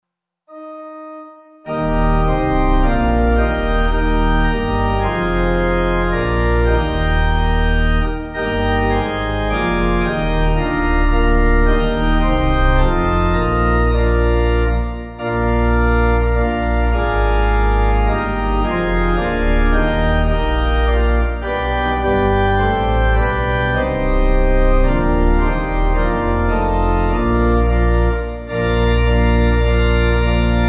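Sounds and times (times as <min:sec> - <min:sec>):
pipe organ playing the offertory at a communion service: 0:00.5 - 0:30.6.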